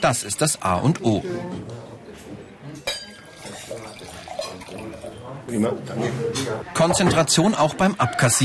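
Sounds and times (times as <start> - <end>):
speech: 0.0 - 1.9, 5.5 - 8.4
indistinct voices murmuring: 0.0 - 8.4
dishes clinking and clattering as tables are served and cleared: 2.8 - 7.6.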